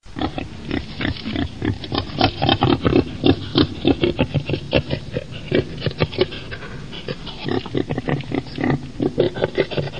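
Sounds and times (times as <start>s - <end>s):
wild boar: 0.2s - 9.9s.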